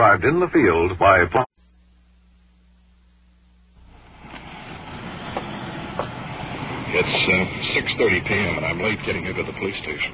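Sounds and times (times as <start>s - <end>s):
speech: 0.0s - 1.5s, 6.9s - 10.1s
freight train rolling past: 3.9s - 10.1s.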